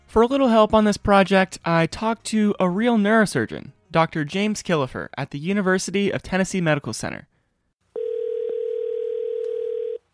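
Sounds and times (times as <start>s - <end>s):
speech: 0.1s - 7.3s
telephone dial tone: 8.0s - 10.1s.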